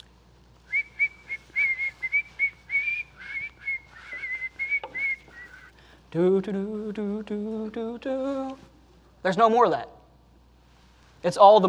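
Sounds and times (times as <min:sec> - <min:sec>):
person whistling a bouncy tune: 0:00.7 - 0:05.7
speech: 0:06.1 - 0:10.0, 0:11.2 - 0:11.6.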